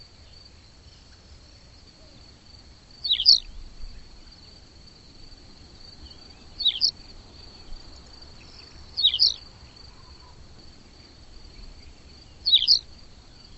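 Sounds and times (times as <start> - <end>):
bird short twisting high chirp calls: 3.0 - 4.1, 6.0 - 7.8, 8.4 - 10.4, 11.5 - 13.5.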